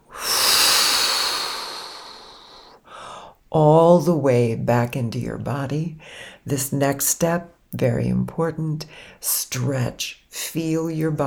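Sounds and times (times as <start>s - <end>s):
deep inhale through the nose and blowing out: 0.0s - 3.4s, 6.0s - 6.4s
speech: 3.6s - 11.2s.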